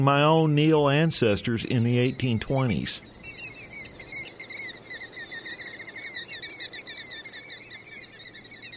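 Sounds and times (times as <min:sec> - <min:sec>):
speech: 0:00.0 - 0:03.2
golden plover flock calling in warbling whistles: 0:00.9 - 0:08.7.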